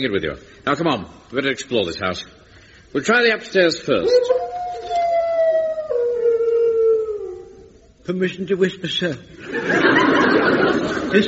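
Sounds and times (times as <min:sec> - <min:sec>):
speech: 0:00.0 - 0:04.4, 0:08.0 - 0:11.2
dog howling: 0:04.0 - 0:07.9
laughter: 0:09.4 - 0:11.2.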